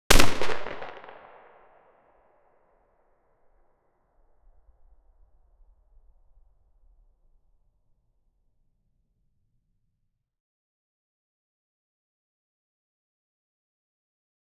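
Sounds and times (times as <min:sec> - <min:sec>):
distant 7.62x39mm gunshot: 0:00.1 - 0:01.5.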